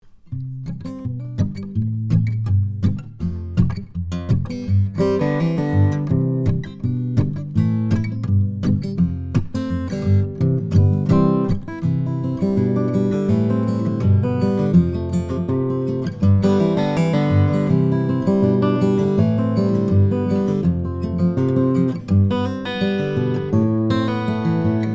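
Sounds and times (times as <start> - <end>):
fingerpicked acoustic guitar recorded with a condenser microphone: 0.0 - 24.9.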